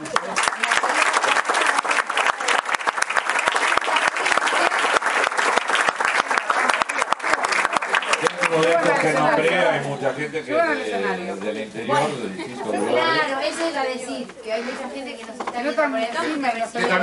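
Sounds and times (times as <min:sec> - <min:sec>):
large audience applauding: 0:00.0 - 0:09.8
speech: 0:09.4 - 0:17.0.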